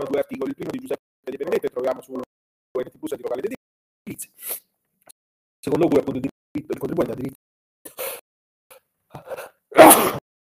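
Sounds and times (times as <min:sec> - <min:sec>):
speech: 0:00.0 - 0:02.3, 0:03.1 - 0:03.6, 0:05.7 - 0:07.4, 0:09.8 - 0:10.2
person sneezing with breathy intakes: 0:09.1 - 0:10.2.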